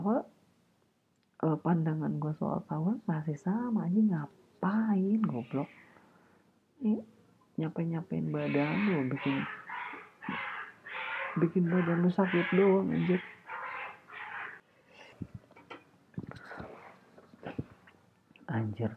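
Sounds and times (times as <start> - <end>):
speech: 1.5 - 5.8, 6.8 - 9.6, 11.4 - 13.4, 18.8 - 18.9
cats fighting outside, yowling and screeching: 8.3 - 14.6.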